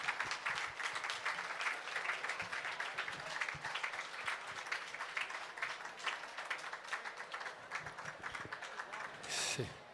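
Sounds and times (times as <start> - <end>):
crowd applauding the first employees of a business: 0.0 - 9.4.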